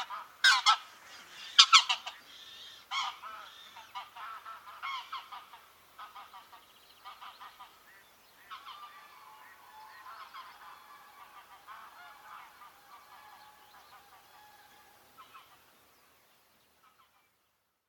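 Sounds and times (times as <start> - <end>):
Greylag goose Anser anser honks: 0.0 - 0.8, 1.6 - 2.2, 2.9 - 15.6
background hiss: 0.0 - 17.8.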